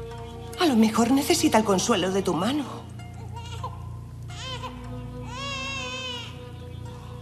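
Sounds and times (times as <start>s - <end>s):
low steady hum: 0.0s - 7.2s
speech: 0.6s - 2.8s
baby wailing: 3.2s - 6.5s.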